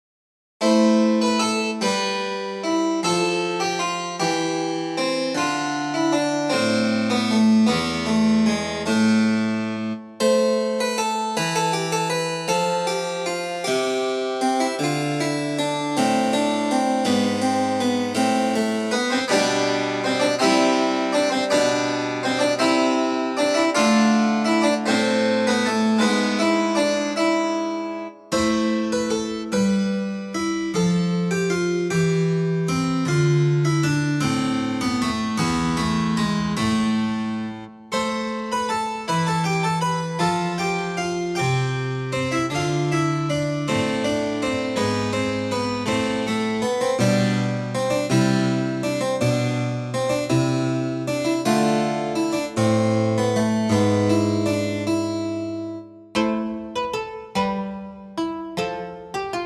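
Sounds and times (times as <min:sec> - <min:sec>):
harpsichord playing: 0:00.6 - 0:59.4.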